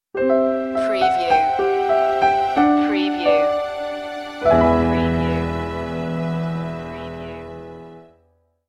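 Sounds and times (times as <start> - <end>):
piano ident: 0.1 - 8.5.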